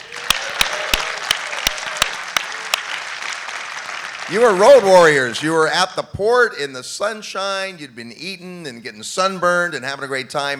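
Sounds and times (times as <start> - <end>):
sharp evenly spaced claps: 0.0 - 5.1
audience applause: 0.0 - 5.6
speech: 4.3 - 10.5.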